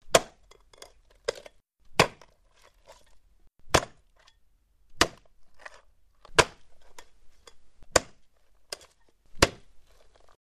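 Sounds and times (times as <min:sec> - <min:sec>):
bone chopping: 0:00.0 - 0:00.5, 0:01.9 - 0:02.4, 0:03.6 - 0:04.2, 0:04.9 - 0:07.0, 0:07.8 - 0:10.4.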